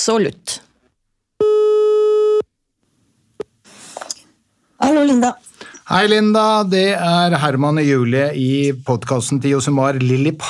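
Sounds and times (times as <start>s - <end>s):
speech: 0.0s - 0.6s, 4.8s - 10.4s
outgoing phone call ringback tone beep: 1.4s - 2.4s.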